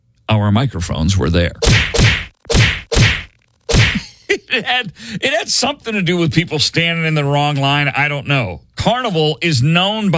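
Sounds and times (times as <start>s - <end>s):
speech: 0.3s - 2.2s, 4.6s - 10.1s
slaps during a fight between two women: 1.6s - 4.0s.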